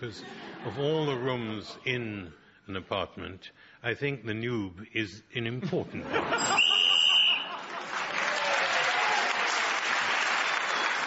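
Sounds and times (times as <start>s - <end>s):
laughter: 0.0s - 1.8s, 5.7s - 8.1s
speech: 0.0s - 6.6s
shrill whistle blast marking time up in a panel game: 6.4s - 7.5s
crowd applauding: 6.6s - 11.0s.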